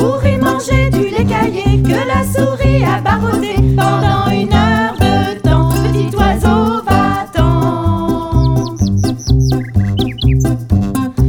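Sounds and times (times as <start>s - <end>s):
loud full instrumental music: 0.0s - 11.2s
small bird chirping in high rising notes: 8.1s - 10.8s.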